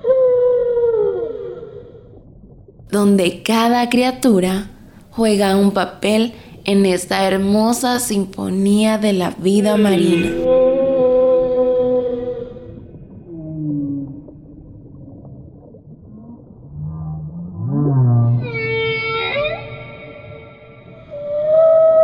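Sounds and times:
whale song with long moaning tonal calls: 0:00.0 - 0:02.8, 0:09.6 - 0:22.0
speech: 0:02.9 - 0:10.5.

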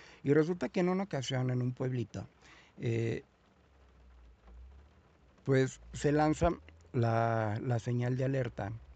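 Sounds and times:
steady rain falling outside: 0:00.0 - 0:08.9
speech: 0:00.2 - 0:03.3, 0:05.5 - 0:08.8.

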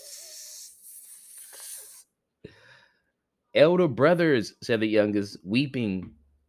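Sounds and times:
breathy snake-like hiss probably made by a voice: 0:00.0 - 0:02.1
speech: 0:03.6 - 0:06.2.

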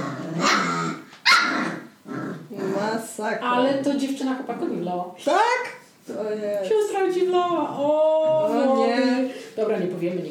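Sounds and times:
dogs snarling and growling while play-fighting: 0:00.0 - 0:03.0
dog barking sharply: 0:00.4 - 0:01.7
speech: 0:03.1 - 0:10.2.

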